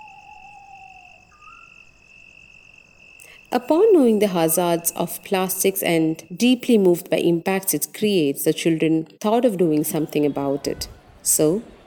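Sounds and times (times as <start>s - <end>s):
owl call: 0.0s - 1.8s
night-time hiss: 0.0s - 7.2s
speech: 3.5s - 11.8s
laughter: 9.7s - 11.8s.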